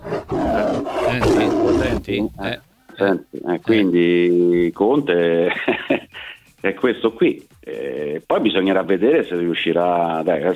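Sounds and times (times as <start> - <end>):
loud tiger roar: 0.0 - 2.5
tiger snarling growls: 0.0 - 2.6
speech: 1.2 - 10.5
laughter: 5.2 - 6.6.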